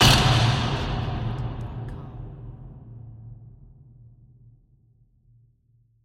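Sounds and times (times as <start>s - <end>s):
rattle hit: 0.0s - 2.6s
designed full impact hit: 0.0s - 4.0s.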